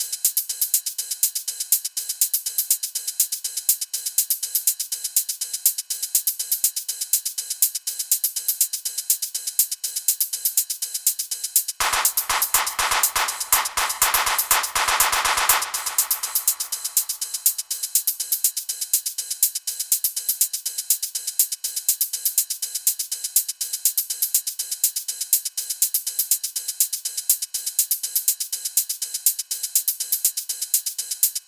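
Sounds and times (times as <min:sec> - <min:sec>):
drum beat: 0:11.8 - 0:17.8.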